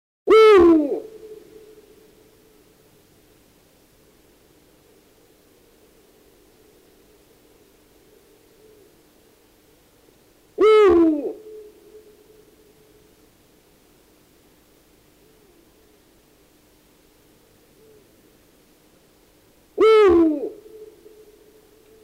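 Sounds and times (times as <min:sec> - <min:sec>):
Eurasian eagle-owl hooting: 0:00.3 - 0:02.6, 0:06.7 - 0:09.0, 0:10.6 - 0:13.1, 0:15.2 - 0:15.9, 0:17.4 - 0:18.2, 0:19.8 - 0:22.0
quiet steady hum: 0:00.3 - 0:22.0.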